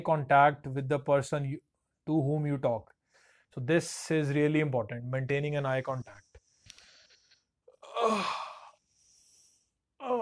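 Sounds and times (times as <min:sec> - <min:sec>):
speech: 0:00.0 - 0:06.2
quiet breaths: 0:02.9 - 0:03.6, 0:05.7 - 0:10.0
person yawning after a workout: 0:07.8 - 0:08.8, 0:10.0 - 0:10.2.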